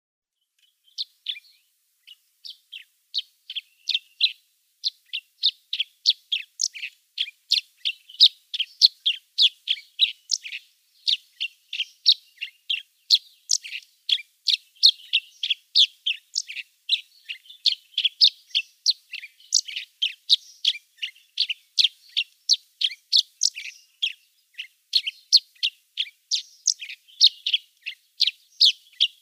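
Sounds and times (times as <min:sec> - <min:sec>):
Chestnut-shouldered Petronia song: 0:00.3 - 0:29.2.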